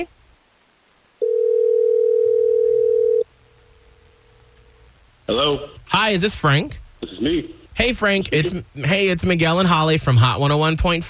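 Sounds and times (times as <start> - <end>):
telephone dial tone while placing a call: 1.2 - 3.2
speech: 5.3 - 11.0.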